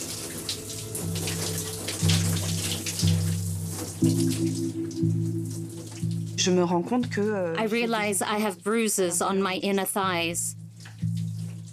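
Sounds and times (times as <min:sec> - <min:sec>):
shower water running: 0:00.0 - 0:07.1, 0:10.7 - 0:11.7
low sustained musical tones: 0:00.0 - 0:11.7
speech: 0:04.0 - 0:10.6.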